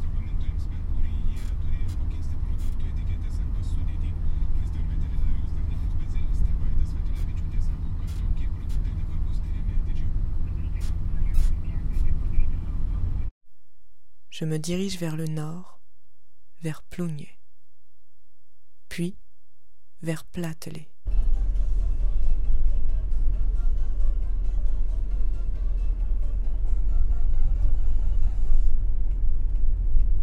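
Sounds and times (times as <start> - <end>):
bus engine drone: 0.0 - 13.3, 21.1 - 30.2
bus road rumble: 0.0 - 13.3, 21.1 - 30.2
speech: 14.4 - 15.7, 16.6 - 17.4, 18.9 - 19.2, 20.0 - 21.2.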